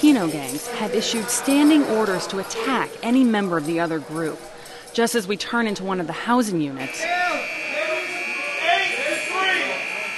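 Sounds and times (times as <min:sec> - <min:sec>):
speech: 0:00.1 - 0:07.5
prison alarm buzzer set off by an officer: 0:06.8 - 0:10.1.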